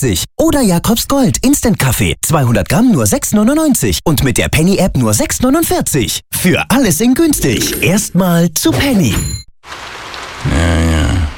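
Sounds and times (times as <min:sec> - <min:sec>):
speech: 0:00.0 - 0:11.3
steady rain: 0:09.6 - 0:11.3.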